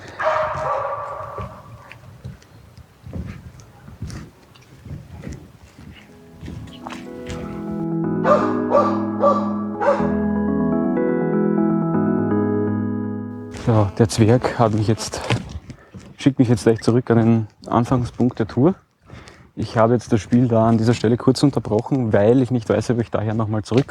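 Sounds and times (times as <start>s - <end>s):
dogs barking while passing by: 0.0s - 2.0s, 6.7s - 10.2s
steady melodic tune: 6.1s - 13.9s
speech: 14.0s - 15.5s, 16.2s - 18.8s, 19.6s - 23.9s.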